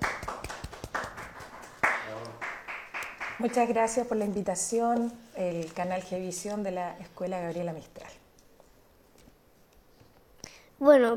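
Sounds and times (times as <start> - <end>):
applause from a small group: 0.0 - 3.7
speech: 3.4 - 8.0, 10.8 - 11.1.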